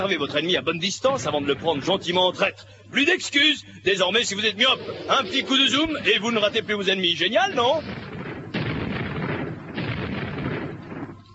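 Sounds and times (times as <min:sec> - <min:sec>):
speech: 0:00.0 - 0:08.1
heavy booming blasts of video game weaponry: 0:07.4 - 0:11.3.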